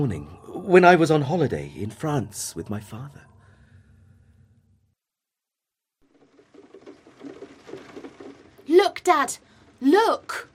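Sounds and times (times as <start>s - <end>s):
speech: 0.0s - 3.3s, 9.0s - 10.5s
soft steady rain pattering outside: 6.0s - 10.5s.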